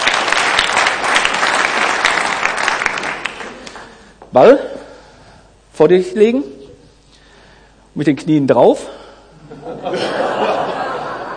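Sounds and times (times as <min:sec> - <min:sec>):
steady applause from a small group: 0:00.0 - 0:04.1
speech: 0:04.4 - 0:04.7, 0:05.8 - 0:06.6, 0:08.0 - 0:10.3
laughter: 0:09.4 - 0:11.3.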